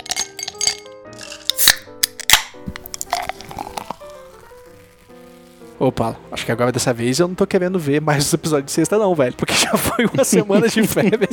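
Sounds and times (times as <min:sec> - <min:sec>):
glass with a cold Coke clinking: 0:00.0 - 0:04.0
speech: 0:05.8 - 0:11.3
laughter: 0:09.5 - 0:11.3.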